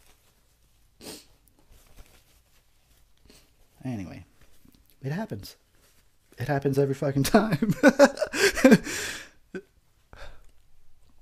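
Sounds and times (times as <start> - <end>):
breathy sniffling through the nose: 1.0 - 1.4, 3.2 - 3.6
speech: 3.8 - 4.3, 5.0 - 5.6, 6.4 - 9.2
laughter: 7.3 - 9.0.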